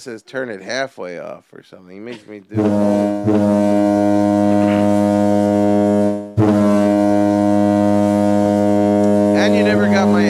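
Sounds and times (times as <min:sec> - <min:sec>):
speech: 0:00.0 - 0:04.1
loud deep foghorn blasts: 0:02.5 - 0:10.2.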